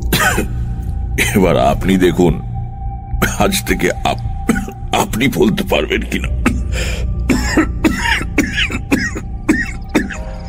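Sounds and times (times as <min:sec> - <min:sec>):
man coughing violently: 0:00.0 - 0:00.6, 0:07.3 - 0:10.2
speech: 0:01.2 - 0:02.5, 0:03.4 - 0:06.9, 0:07.6 - 0:07.8.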